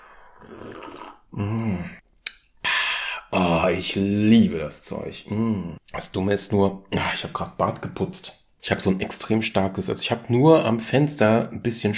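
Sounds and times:
breathy rush of air: 0:00.0 - 0:00.5
person sipping water with squeezed lime from a glass: 0:00.1 - 0:03.3
speech: 0:03.7 - 0:11.9.

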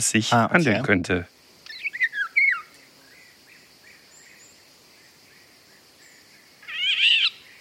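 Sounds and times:
speech: 0:00.0 - 0:01.4
faint birds: 0:00.0 - 0:07.5
Eurasian golden oriole song of loud fluting whistles: 0:01.7 - 0:02.7, 0:06.6 - 0:07.5.

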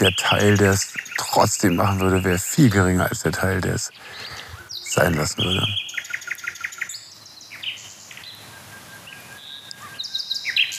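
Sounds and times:
speech: 0:00.0 - 0:04.3, 0:05.0 - 0:05.9
nightingales singing outdoors: 0:00.0 - 0:10.7.

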